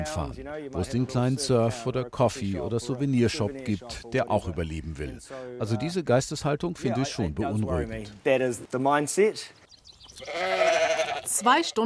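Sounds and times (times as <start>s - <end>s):
speech: 0.0s - 9.6s, 10.2s - 11.8s
faint outdoor noise: 0.0s - 11.8s
sheep bleating in mountain meadows in New Zealand: 10.2s - 11.6s.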